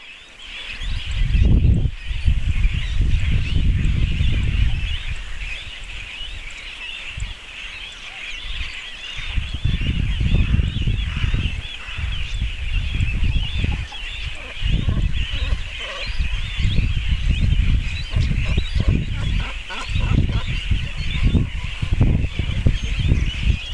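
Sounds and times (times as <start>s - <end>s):
Phalacrocorax carbo chicks at colony: 0.0s - 23.7s
adult Phalacrocorax carbo at colony: 13.4s - 16.6s, 17.7s - 23.7s.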